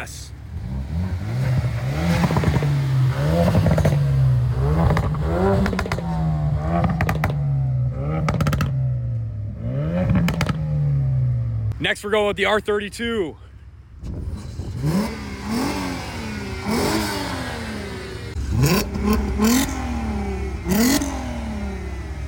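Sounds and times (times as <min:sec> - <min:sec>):
car engine idling and revving: 0:00.0 - 0:11.8, 0:14.0 - 0:22.2
speech: 0:11.9 - 0:13.5
wind noise: 0:14.0 - 0:15.2.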